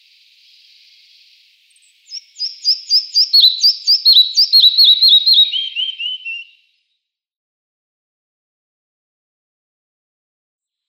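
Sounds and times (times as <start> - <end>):
Red-breasted flycatcher song in Iran: 0.0 - 6.8.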